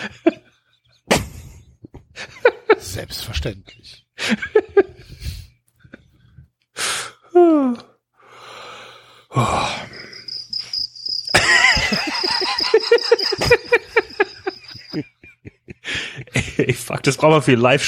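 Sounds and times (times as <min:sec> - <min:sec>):
speech: 0:00.0 - 0:00.4, 0:02.9 - 0:04.9, 0:16.7 - 0:17.8
laughter: 0:00.0 - 0:03.0, 0:04.2 - 0:06.2, 0:11.3 - 0:17.0
breathy sighs and gasps: 0:06.8 - 0:10.2
crickets chirping: 0:09.4 - 0:15.1.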